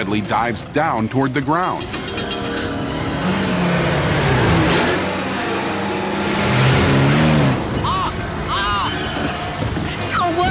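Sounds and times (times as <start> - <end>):
speech: 0.0 - 2.5
car engine sputtering and revving: 1.8 - 10.1.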